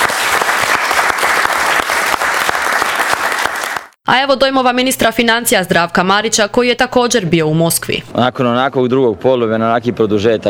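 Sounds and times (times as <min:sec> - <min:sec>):
applause from government members at a cabinet session: 0:00.0 - 0:04.0
speech: 0:04.1 - 0:10.4.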